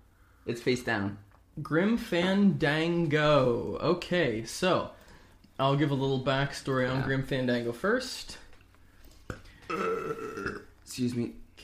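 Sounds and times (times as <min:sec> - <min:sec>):
speech: 0:00.5 - 0:05.0, 0:05.6 - 0:08.4, 0:09.7 - 0:10.3, 0:10.9 - 0:11.6
person's loud drawn-out burp: 0:09.6 - 0:10.8.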